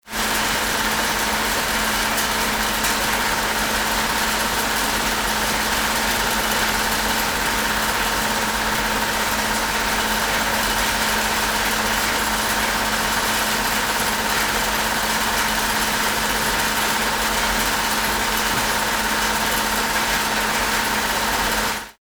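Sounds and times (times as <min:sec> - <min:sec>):
winding machine: 0:00.2 - 0:21.9.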